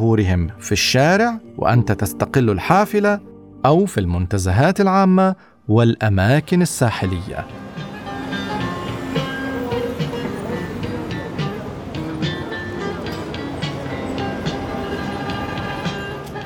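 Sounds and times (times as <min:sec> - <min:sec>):
speech: 0:00.0 - 0:08.4
metro train rumbling through a station: 0:07.4 - 0:16.4.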